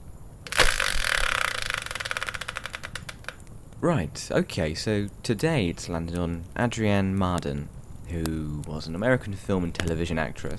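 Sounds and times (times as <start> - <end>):
spinning prize wheel sound effect with ratcheting clicks: 0.5 - 3.4
speech: 3.8 - 10.5.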